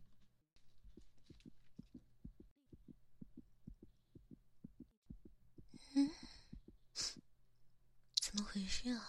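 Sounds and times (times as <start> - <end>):
fast heartbeat through stethoscope: 0.7 - 7.3
speech: 8.7 - 9.0.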